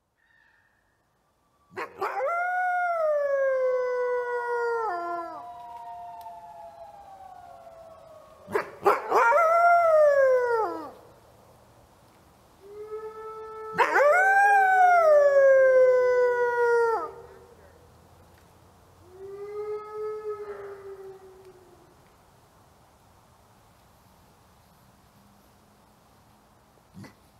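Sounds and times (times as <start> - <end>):
red wolf howling at twilight: 1.7 - 11.0, 12.6 - 17.4, 19.0 - 22.0.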